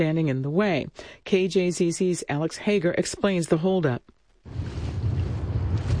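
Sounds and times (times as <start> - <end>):
speech: 0.0 - 4.7
strong wind blowing across open ground at a rickety windmill on a plain: 4.5 - 5.9.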